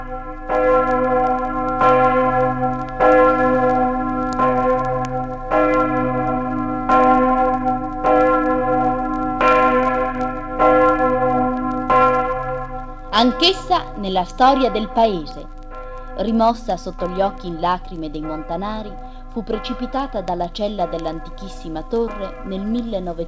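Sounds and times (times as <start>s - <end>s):
large main bell of the parish church of Corto in Friuli tolling: 0.0s - 23.2s
speech: 0.1s - 1.0s, 13.2s - 15.6s, 16.2s - 23.2s.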